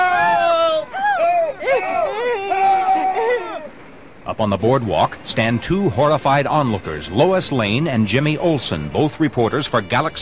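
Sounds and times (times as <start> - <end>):
bathers on a beach screaming in panic: 0.0 - 3.8
speech: 4.3 - 10.2.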